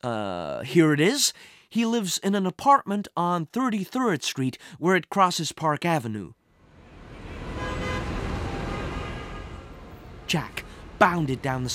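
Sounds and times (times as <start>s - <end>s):
speech: 0.0s - 6.4s, 10.3s - 11.7s
dense city traffic rumbling: 6.5s - 11.7s
car horns honking: 6.7s - 11.0s.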